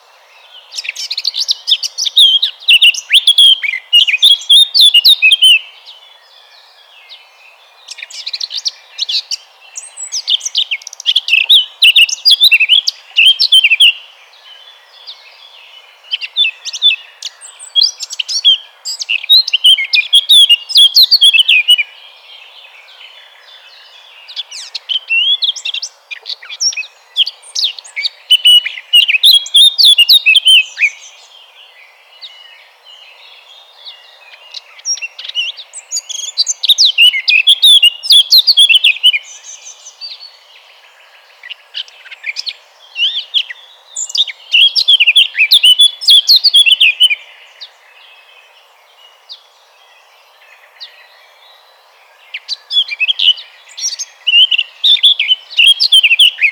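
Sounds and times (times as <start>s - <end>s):
blackcap singing: 0.0s - 56.5s.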